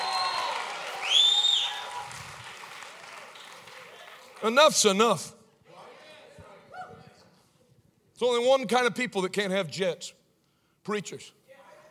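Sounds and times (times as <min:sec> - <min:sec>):
church audience applause: 0:00.0 - 0:04.6
speech: 0:04.4 - 0:05.4, 0:08.2 - 0:10.2, 0:10.8 - 0:11.4
person shouting praise: 0:11.5 - 0:11.9.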